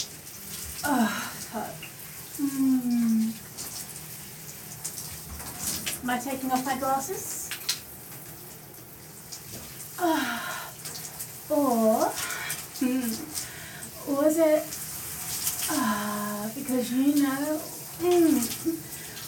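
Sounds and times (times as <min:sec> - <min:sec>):
shower water running: 0:00.0 - 0:19.2
speech: 0:06.1 - 0:07.4, 0:16.8 - 0:18.5.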